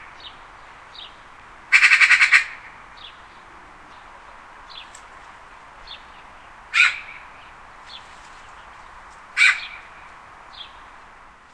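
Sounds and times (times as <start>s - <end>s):
magpie harsh rasping call: 1.7s - 2.7s, 6.7s - 7.3s, 9.4s - 10.0s.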